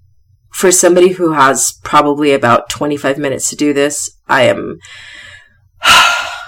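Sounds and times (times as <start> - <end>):
speech: 0.6 - 5.2, 5.8 - 6.1
deep controlled tactical breathing: 4.8 - 6.4.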